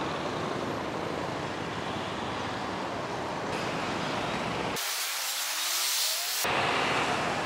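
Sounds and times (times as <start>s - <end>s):
cars and trucks passing: 0.0s - 7.4s
road traffic roar: 0.0s - 7.4s
tyres hissing on pavement: 4.8s - 6.5s.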